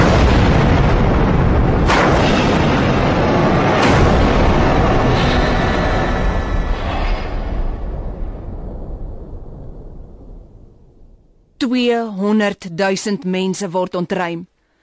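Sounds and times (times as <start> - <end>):
sharp explosion blasts: 0.0 - 8.0
loud explosion with deep rumbling roar: 0.0 - 11.5
speech: 11.7 - 14.5.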